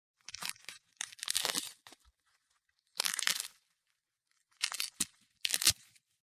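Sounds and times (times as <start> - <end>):
fruit being crushed and mashed: 0.3 - 2.0, 2.9 - 3.6, 4.5 - 5.9.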